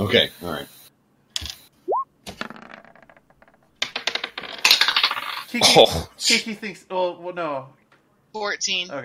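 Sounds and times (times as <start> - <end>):
speech: 0.1 - 0.8, 5.5 - 7.8, 8.4 - 9.0
dice rolling on a hard tabletop: 2.3 - 5.5.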